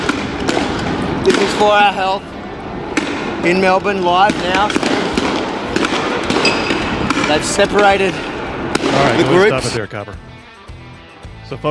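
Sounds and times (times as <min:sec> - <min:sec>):
rubber bullets and tear gas rounds fired at a crowd in Melbourne: 0:00.0 - 0:02.0, 0:02.9 - 0:09.6
reporter talking: 0:01.2 - 0:02.3, 0:03.4 - 0:04.9, 0:07.0 - 0:10.2
speech: 0:01.3 - 0:02.4, 0:03.4 - 0:05.0, 0:07.3 - 0:10.3, 0:11.5 - 0:11.6.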